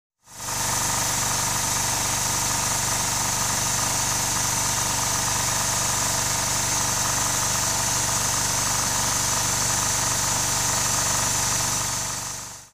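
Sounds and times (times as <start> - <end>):
machine tool: 0.4 - 12.7.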